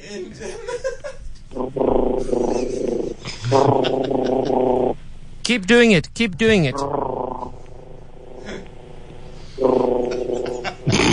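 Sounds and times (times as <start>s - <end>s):
speech: 0.1s - 2.4s, 5.5s - 7.0s
laughter: 0.3s - 1.3s, 2.4s - 4.6s, 9.8s - 11.1s
child making a buzzing engine noise with vibrating lips: 1.6s - 5.0s, 6.7s - 11.1s.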